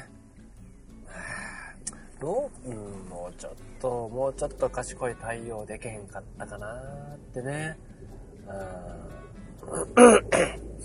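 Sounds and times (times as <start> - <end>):
speech: 2.2 - 7.9, 8.5 - 10.8
person clearing throat: 10.0 - 10.6.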